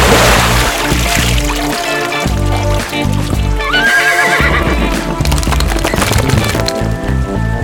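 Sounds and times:
horse hooves clip-clopping: 1.0s - 7.4s
horse whinnying: 3.6s - 5.2s.

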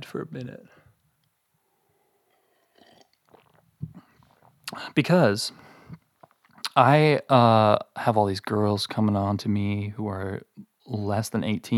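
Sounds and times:
speech: 0.0s - 0.8s, 4.7s - 5.7s, 6.8s - 11.7s
sipping tea: 2.2s - 4.9s
swallowing: 2.3s - 4.8s.

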